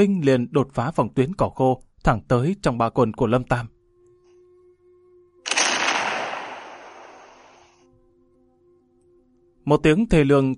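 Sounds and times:
speech: 0.0 - 3.8, 9.6 - 10.5
large artillery shell fired in a battle, cannon blast with rumbling decay: 5.5 - 7.7.

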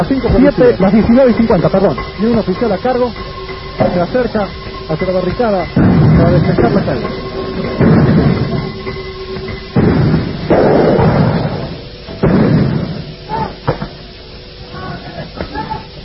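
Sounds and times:
speech: 0.0 - 8.0
constant rough rumble: 1.1 - 13.2
tear gas canisters going off during a street protest at a barricade: 5.6 - 14.3
gunshots during a street protest at a barricade: 5.8 - 6.8, 9.7 - 13.1.

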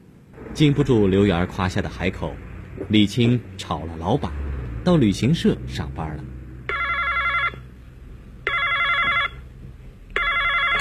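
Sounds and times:
speech: 0.6 - 6.3
electronic telephone bell ringing in a travel agency office: 6.7 - 7.6, 8.5 - 9.4, 10.2 - 10.7.

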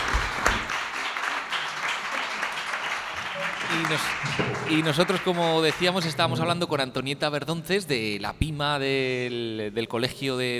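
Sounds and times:
applause for two local associations at a community event in Fitero: 0.0 - 6.7
speech: 3.7 - 10.5.

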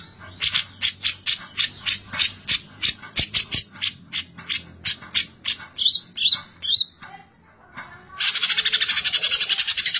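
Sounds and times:
Greater green leafbird song with sharp chips, whistled slurs and buzzy trill: 0.0 - 7.0, 8.1 - 9.9.

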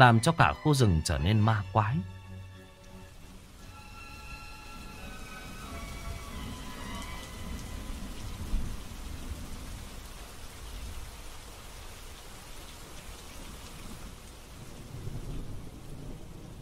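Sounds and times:
speech: 0.0 - 2.2
heavy rain pouring down in a forest: 0.0 - 16.6
rolling thunder in a forest: 4.7 - 11.1, 14.6 - 16.6.

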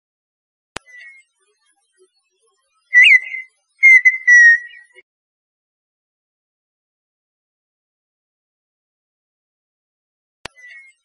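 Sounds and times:
partridge song of clicks and whistles: 2.9 - 5.0.

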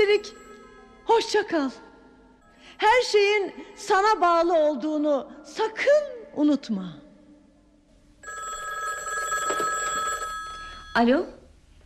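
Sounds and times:
speech: 0.0 - 0.4, 1.1 - 1.9, 2.8 - 7.0, 11.0 - 11.4
telephone ringing with an electronic trill: 8.2 - 11.2.

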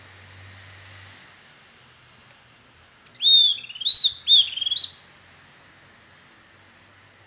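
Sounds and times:
bird song: 2.2 - 5.2.

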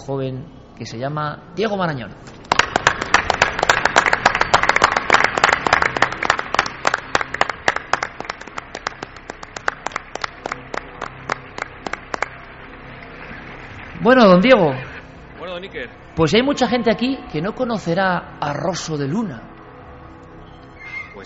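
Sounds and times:
speech: 0.0 - 2.4, 14.0 - 14.9, 15.6 - 19.5
audience applause: 2.4 - 12.4.

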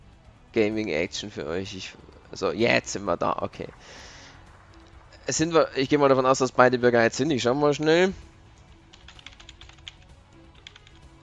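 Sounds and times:
low hum: 0.0 - 11.2
speech: 0.5 - 4.1, 5.3 - 8.3
quiet typing on a computer keyboard during a gaming session: 8.9 - 10.0, 10.6 - 11.1.

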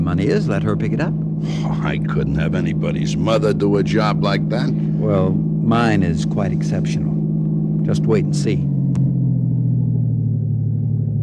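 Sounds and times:
speech: 0.0 - 7.1, 7.8 - 8.7
car engine humming while driving and turning: 0.0 - 11.2.

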